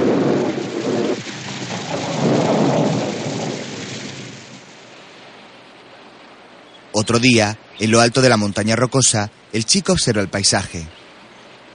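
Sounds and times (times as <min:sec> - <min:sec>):
deep rumble of thunder: 0:00.0 - 0:05.8
heavy rain pouring: 0:00.0 - 0:11.7
speech: 0:07.0 - 0:11.0.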